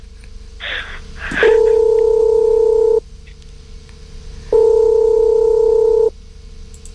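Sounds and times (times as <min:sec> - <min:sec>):
telephone dial tone while placing a call: 0:01.4 - 0:03.0, 0:04.6 - 0:06.1.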